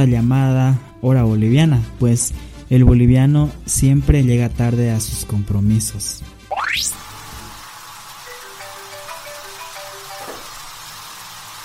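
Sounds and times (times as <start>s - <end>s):
speech: 0.0s - 7.0s
rising whistle-like sweep: 6.5s - 7.0s
shower water running in a bathroom: 6.6s - 11.6s.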